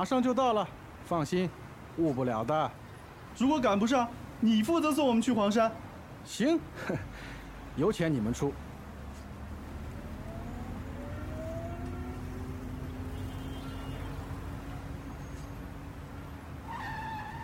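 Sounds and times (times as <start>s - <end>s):
speech: 0.0s - 2.8s, 3.4s - 8.7s
car driving with road roar: 8.4s - 17.4s
car tire squeal from sudden braking: 13.2s - 14.3s, 16.6s - 17.4s.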